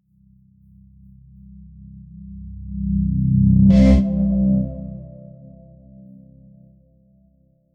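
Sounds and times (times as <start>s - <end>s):
cinematic startup tone: 3.7s - 6.0s.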